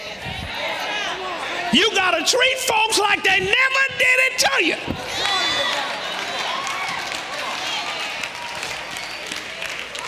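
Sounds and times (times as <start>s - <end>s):
speech: 1.7s - 5.8s
audience clapping during a sermon: 5.0s - 10.0s.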